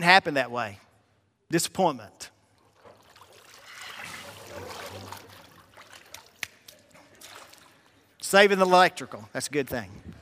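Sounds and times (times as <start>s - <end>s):
speech: 0.0s - 0.8s, 1.5s - 2.3s, 8.3s - 10.1s
light trickle of water: 2.5s - 8.2s
water gushing out in a broad steady rush: 3.0s - 6.4s.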